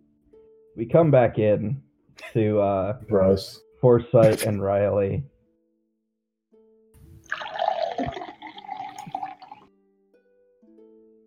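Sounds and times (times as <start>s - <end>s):
speech: 0.8s - 5.3s
liquid pouring into a glass: 7.2s - 9.6s.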